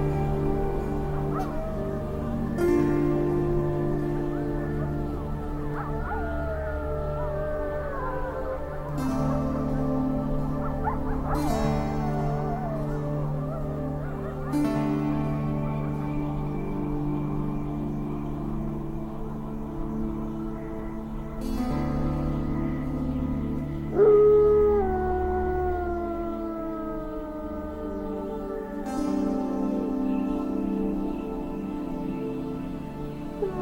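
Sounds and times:
higher gliding calls: 0.0s - 33.5s
slow music of low sustained tones: 0.0s - 33.5s.

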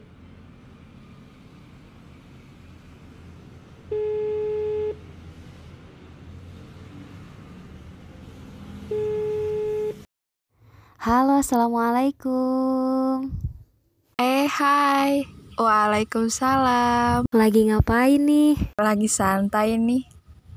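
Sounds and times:
phone outgoing ringback tone: 3.9s - 5.0s, 8.9s - 10.1s
speech: 11.1s - 13.4s, 14.5s - 20.1s.

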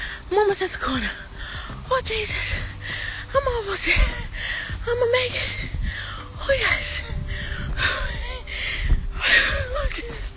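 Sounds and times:
heavy breathing while walking uphill: 0.0s - 0.3s, 1.1s - 3.3s, 4.0s - 4.8s, 5.4s - 6.4s, 7.2s - 9.7s
speech: 0.3s - 1.3s, 1.9s - 5.8s, 6.4s - 7.1s, 9.3s - 10.3s.

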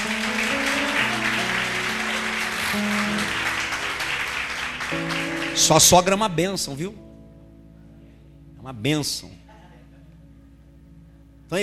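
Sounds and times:
audience applauding: 0.0s - 6.2s
sustained keyboard or organ chords: 0.0s - 11.6s
speech: 5.6s - 7.1s, 8.7s - 9.4s.

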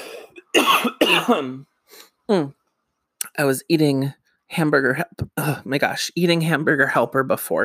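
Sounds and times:
person coughing and clearing throat with macaroni stuck in throat: 0.0s - 1.6s
speech: 1.1s - 2.6s, 3.3s - 7.6s.

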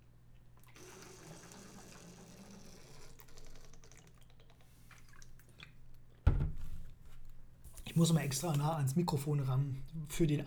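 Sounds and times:
person drinking from a large water bottle with mouth clicks and gulps: 0.6s - 6.2s
loud plastic knock: 6.3s - 6.7s
speech: 8.0s - 10.4s.

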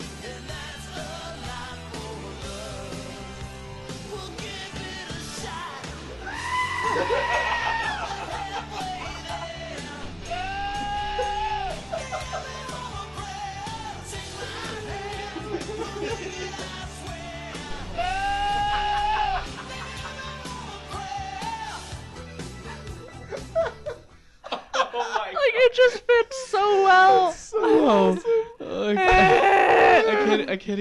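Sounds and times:
loud rock song: 0.0s - 23.6s
laughter: 6.3s - 13.2s, 14.1s - 21.8s, 22.4s - 30.6s
goat screams edited into rock song: 29.0s - 30.4s.

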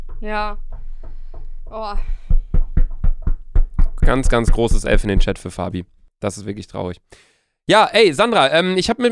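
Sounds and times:
dull heavy knocks: 0.0s - 5.5s
speech: 0.2s - 0.7s, 1.7s - 2.2s, 4.0s - 9.1s.

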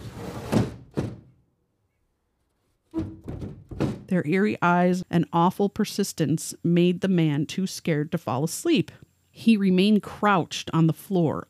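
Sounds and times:
boys thumping knocks on walls and window of a house: 0.4s - 1.4s, 2.9s - 4.1s
speech: 4.1s - 11.4s.

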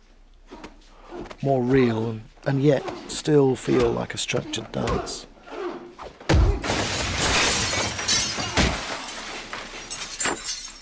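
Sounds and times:
speech: 1.4s - 5.3s
glass shattering during a fight scene in a film: 6.6s - 10.8s
spray of tinkling glass shards: 7.7s - 10.8s.

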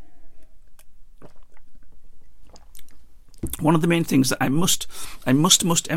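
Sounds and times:
person gulping orange juice: 0.4s - 3.6s
orange juice slurping: 1.2s - 3.6s
speech: 3.5s - 5.9s.

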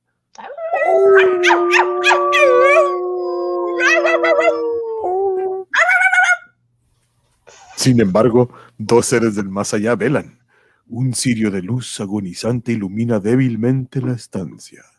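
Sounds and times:
several dogs howling on a moor: 0.4s - 6.5s
speech: 1.4s - 2.6s, 7.8s - 14.9s.

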